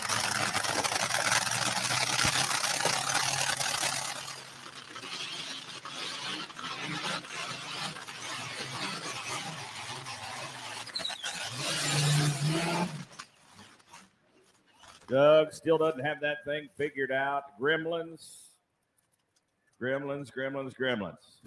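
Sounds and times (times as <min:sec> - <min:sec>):
pulling tractor V12 engine roaring: 0:00.0 - 0:17.1
speech: 0:15.1 - 0:18.4, 0:19.8 - 0:21.4.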